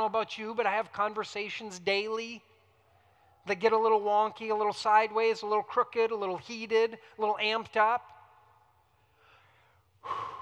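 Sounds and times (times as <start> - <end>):
speech: 0.0 - 2.5, 3.4 - 8.1
deep breath drawn in sharply: 9.0 - 10.3.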